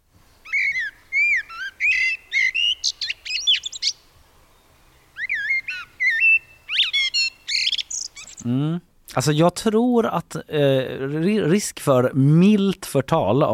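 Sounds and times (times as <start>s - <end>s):
common blackbird singing: 0.4s - 8.6s
speech: 8.5s - 13.5s.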